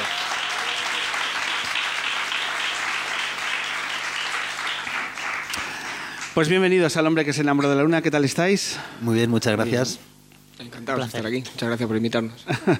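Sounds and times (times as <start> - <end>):
audience applause: 0.0 - 6.7
speech: 6.4 - 12.7
laughter: 12.5 - 12.7.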